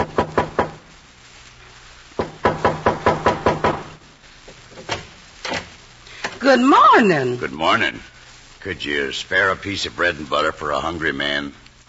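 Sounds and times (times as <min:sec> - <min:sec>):
knocking on a house's back door: 0:00.0 - 0:00.8, 0:02.2 - 0:04.0
speech: 0:06.4 - 0:11.8.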